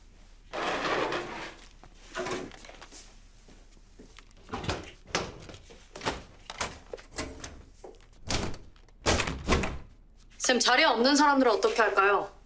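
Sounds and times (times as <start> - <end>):
school lockers at the back of a classroom being opened: 0.5 - 2.8, 4.4 - 9.9
speech: 10.5 - 12.4.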